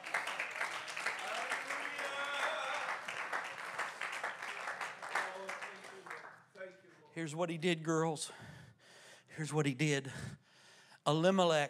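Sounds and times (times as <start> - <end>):
congregation clapping hands in applause: 0.0 - 7.0
speech: 7.2 - 8.6, 9.4 - 10.4, 11.1 - 11.6.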